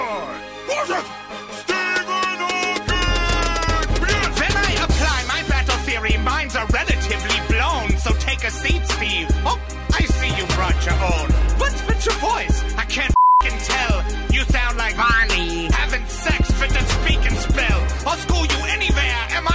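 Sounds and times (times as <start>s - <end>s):
loud busy song with vocals: 1.6s - 19.5s
censor bleep tone over a word: 13.2s - 13.5s.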